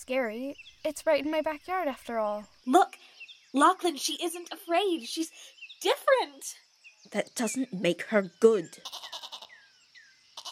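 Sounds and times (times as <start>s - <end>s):
speech: 0.0s - 9.2s
goat bleating: 8.8s - 9.5s, 10.4s - 10.5s.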